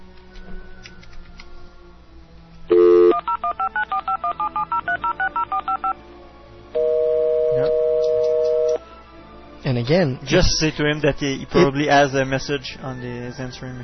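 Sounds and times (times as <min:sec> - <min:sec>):
loud steady phone tone: 0:02.7 - 0:06.0, 0:06.8 - 0:08.8
touch-tone DTMF beeps of a phone number being dialed: 0:02.8 - 0:06.0
speech: 0:09.8 - 0:13.8.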